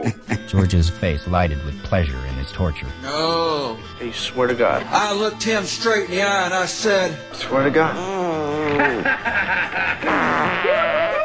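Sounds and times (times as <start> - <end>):
speech: 0.0 - 10.6
laughter: 7.7 - 11.2
voice imitating a farting noise with a buzzy sputtering raspberry: 8.0 - 9.0, 10.0 - 11.2.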